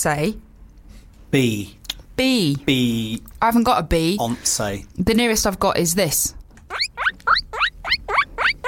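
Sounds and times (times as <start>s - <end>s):
speech: 0.0s - 0.5s, 1.3s - 6.4s
guinea pig squeals as a sound effect: 6.7s - 8.6s.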